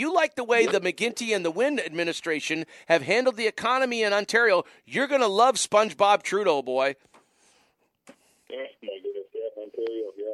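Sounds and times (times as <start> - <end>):
speech: 0.0 - 7.1, 8.1 - 10.3
garbled distorted speech over a poor telephone connection: 8.5 - 10.3.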